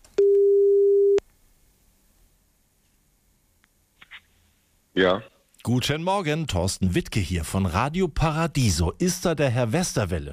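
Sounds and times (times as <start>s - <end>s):
telephone ringing tone: 0.2s - 1.2s
speech: 5.0s - 10.3s.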